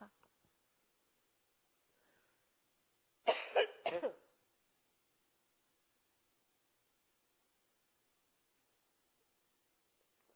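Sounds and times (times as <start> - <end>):
harsh throaty coughs: 3.3 - 4.2.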